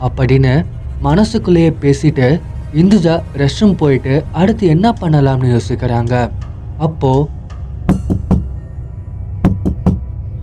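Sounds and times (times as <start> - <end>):
speech: 0.0 - 7.4
low hum: 0.0 - 10.4
firm knocks on a restroom door: 7.9 - 8.6, 9.4 - 10.0.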